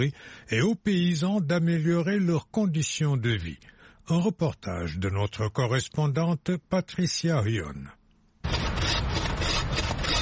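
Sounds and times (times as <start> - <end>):
speech: 0.0 - 8.0
hand saw cutting black wattle acacia wood in a dense thicket: 8.5 - 10.2.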